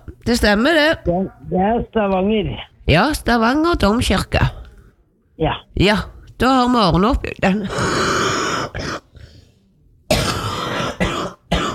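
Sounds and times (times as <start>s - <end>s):
speech: 0.2s - 4.5s, 5.4s - 8.1s
person coughing after something went down the wrong way: 7.8s - 9.1s, 10.1s - 11.7s.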